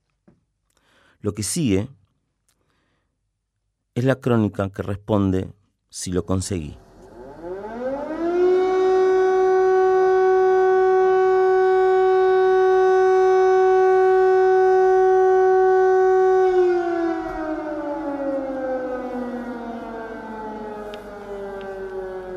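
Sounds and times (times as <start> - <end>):
speech: 1.2 - 2.0, 4.0 - 6.8
air raid siren wailing at night: 6.8 - 22.3.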